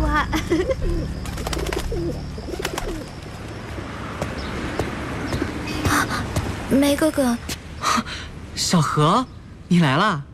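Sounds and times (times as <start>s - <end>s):
busy outdoor noise: 0.0s - 10.3s
scattered chirps: 0.3s - 10.3s
pigeons cooing in low throaty bursts: 0.8s - 3.2s
speech: 6.7s - 10.3s.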